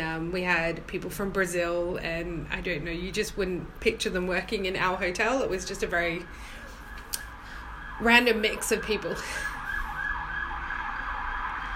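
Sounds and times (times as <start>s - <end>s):
low rumble of traffic: 0.0s - 11.7s
speech: 0.2s - 6.6s, 8.0s - 9.5s
emergency vehicle siren near London: 4.7s - 11.7s.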